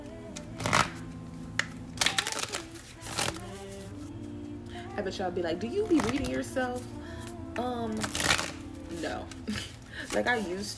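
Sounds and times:
tarot cards being shuffled: 0.4 - 4.1, 5.8 - 6.4, 8.0 - 10.7
speech: 5.0 - 7.0, 7.6 - 8.3, 8.9 - 10.7.

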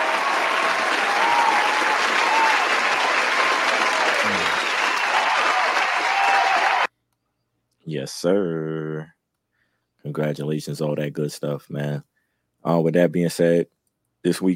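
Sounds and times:
dense round of applause from a large crowd: 0.0 - 6.9
faint cheering: 0.0 - 6.9
speech: 8.0 - 9.2, 10.0 - 14.5.

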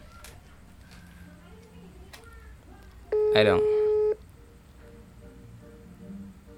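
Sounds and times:
faint low room hum: 0.0 - 6.5
short electronic phone ringback tone from a call in progress: 3.1 - 4.2
speech: 3.4 - 3.7.

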